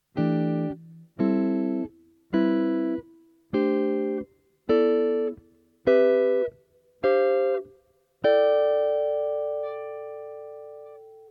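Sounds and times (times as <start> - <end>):
guitar chord melody: 0.2 - 11.2.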